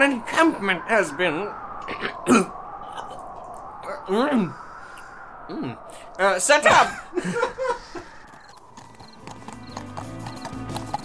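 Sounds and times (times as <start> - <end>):
speech: 0.0 - 2.6, 4.1 - 4.6, 5.5 - 7.8
laughter: 6.7 - 8.2
horse hooves clip-clopping to a stop: 8.3 - 11.0.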